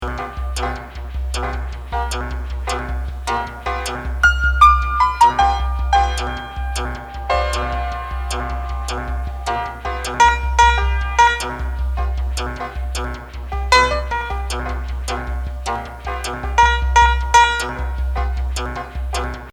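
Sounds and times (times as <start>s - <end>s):
arpeggiated keyboard tones: 0.0s - 19.5s.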